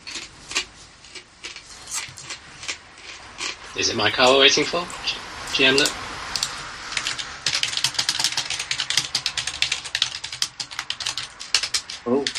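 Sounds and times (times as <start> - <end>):
speech: 3.8 - 6.0
rapid typing on a computer keyboard: 6.4 - 12.3.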